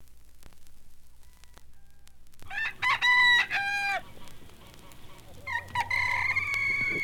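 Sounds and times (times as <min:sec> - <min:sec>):
bantam rooster crowing: 0:01.2 - 0:04.2, 0:04.8 - 0:07.0.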